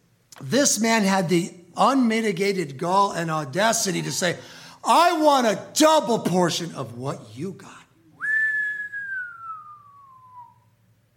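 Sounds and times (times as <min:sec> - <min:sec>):
speech: 0:00.4 - 0:07.8
long human whistle: 0:08.1 - 0:10.8.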